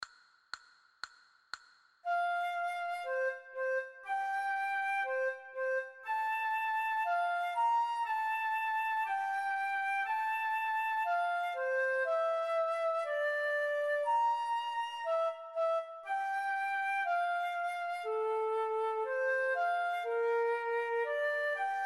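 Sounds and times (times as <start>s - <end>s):
recorder playing an allegro moderato: 2.1s - 21.8s.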